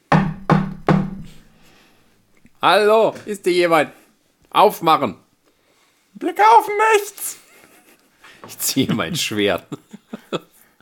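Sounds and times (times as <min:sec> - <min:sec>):
loud heavy knocks on a wooden door: 0:00.1 - 0:01.4
speech: 0:02.6 - 0:05.2, 0:06.2 - 0:07.4, 0:08.5 - 0:10.5
laughter: 0:07.4 - 0:10.6.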